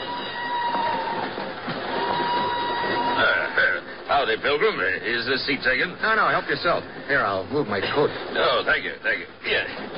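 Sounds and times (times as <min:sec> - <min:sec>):
northbound train rolling along the rails out of Lisbon: 0:00.0 - 0:09.9
train wheels clicking and knocking: 0:00.0 - 0:09.9
speech: 0:04.1 - 0:09.9.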